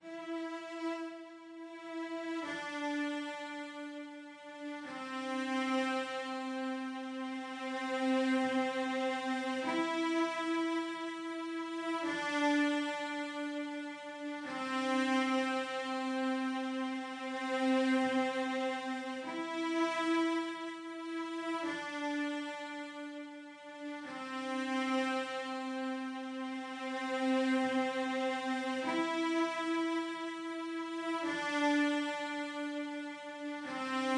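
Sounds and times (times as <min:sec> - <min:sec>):
cello strings: 0:00.0 - 0:34.1.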